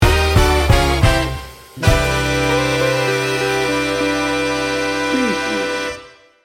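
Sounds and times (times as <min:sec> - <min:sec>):
big band swing sting bumper: 0:00.0 - 0:06.0.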